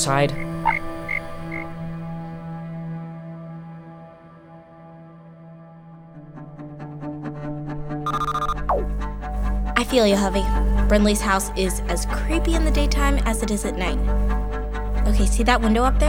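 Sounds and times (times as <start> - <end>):
speech: 0.0 - 0.8, 9.9 - 14.4, 15.1 - 16.0
frog croaking: 0.3 - 1.7, 8.1 - 8.8.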